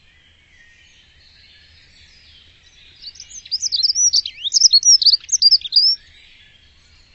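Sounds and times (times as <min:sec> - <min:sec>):
bird twittering: 0:02.8 - 0:06.0.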